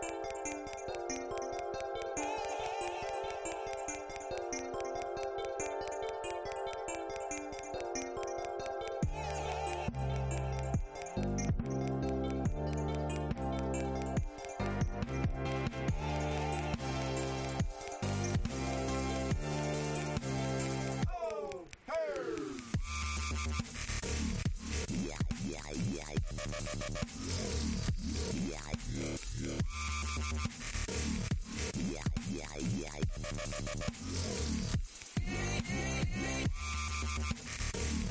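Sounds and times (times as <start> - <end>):
bright layered synth tones: 0.0 - 21.0
loud electronic music track: 0.0 - 38.0
steady pulsing bass beat: 9.0 - 21.4, 22.0 - 38.0.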